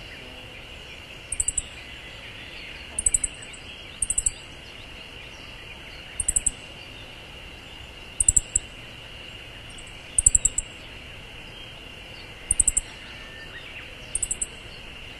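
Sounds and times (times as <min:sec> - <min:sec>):
continuous droning insect background: 0:00.0 - 0:15.1
Siberian bunting high thin tsip calls: 0:01.3 - 0:01.7, 0:02.9 - 0:04.4, 0:06.2 - 0:06.6, 0:08.2 - 0:08.7, 0:09.7 - 0:10.8, 0:12.5 - 0:13.2, 0:14.2 - 0:14.7.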